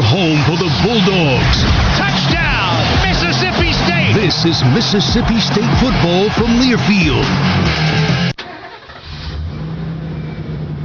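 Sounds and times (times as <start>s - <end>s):
new truck engine starting and revving: 0.5s - 10.8s
speech: 1.0s - 1.8s, 4.3s - 8.2s.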